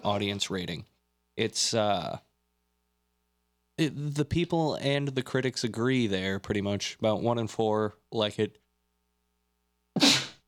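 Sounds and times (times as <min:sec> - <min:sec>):
speech: 0:00.0 - 0:02.3, 0:03.8 - 0:08.6
person sneezing: 0:10.0 - 0:10.4.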